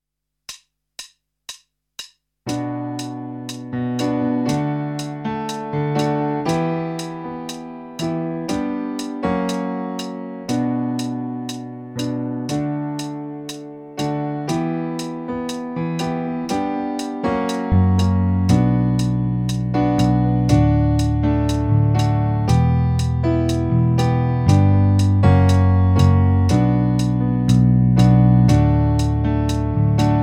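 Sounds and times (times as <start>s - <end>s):
rhythmic piano clicks on a MIDI pad controller: 0.5s - 30.2s.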